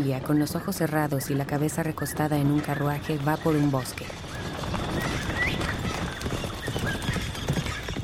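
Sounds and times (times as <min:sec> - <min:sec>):
speech: 0:00.0 - 0:04.3
faint high chirp of birds: 0:01.0 - 0:07.8
horse hooves clip-clopping on a dirt road: 0:01.9 - 0:08.0.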